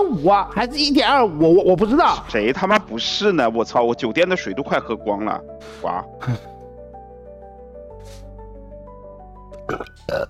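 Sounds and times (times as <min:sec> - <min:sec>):
speech: 0:00.0 - 0:06.5, 0:09.7 - 0:10.2
person burping after drinking: 0:06.2 - 0:06.6, 0:09.6 - 0:10.2.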